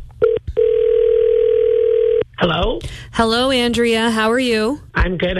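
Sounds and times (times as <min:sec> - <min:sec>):
steady electronic ringing tone on a phone line: 0:00.2 - 0:02.2
speech: 0:03.1 - 0:05.3.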